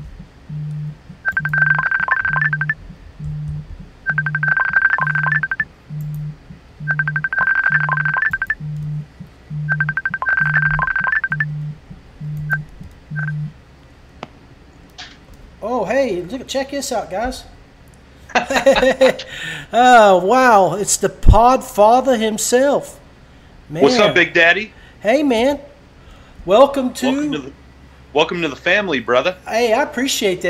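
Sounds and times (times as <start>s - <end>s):
low pulsing beat: 0.0s - 1.8s, 2.4s - 10.8s, 11.4s - 13.5s
phone ringing for an incoming call: 0.5s - 13.5s
speech: 16.4s - 17.5s, 18.6s - 23.0s, 23.7s - 25.7s, 26.4s - 30.4s
laughter: 18.3s - 19.4s.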